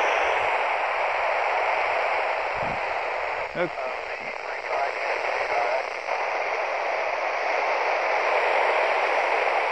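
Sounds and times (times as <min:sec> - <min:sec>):
handheld radio static after losing satellite signal: 0:00.0 - 0:09.6
faint garbled blips of a satellite transmission: 0:02.2 - 0:09.6.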